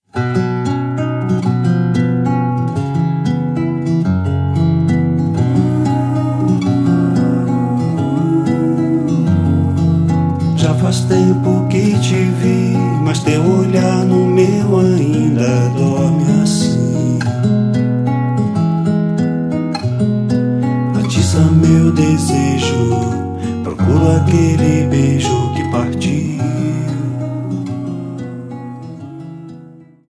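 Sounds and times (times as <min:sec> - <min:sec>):
acoustic guitar: 0:00.0 - 0:30.1
person singing: 0:05.3 - 0:17.5, 0:21.0 - 0:30.1.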